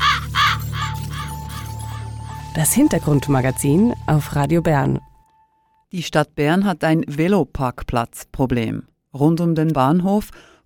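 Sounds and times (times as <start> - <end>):
raven cawing: 0.0 - 2.5
speech: 2.6 - 5.1, 5.9 - 10.6.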